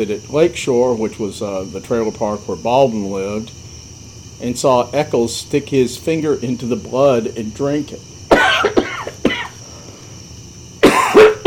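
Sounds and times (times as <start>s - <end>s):
speech: 0.0s - 3.6s, 4.4s - 8.1s
throat clearing: 8.3s - 9.6s, 10.8s - 11.4s
harsh raspy coughing: 8.3s - 9.7s, 10.8s - 11.4s.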